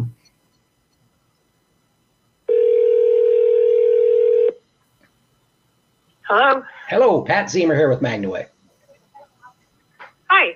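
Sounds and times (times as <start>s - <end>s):
telephone dial tone while placing a call: 2.5s - 4.6s
speech: 6.3s - 8.6s.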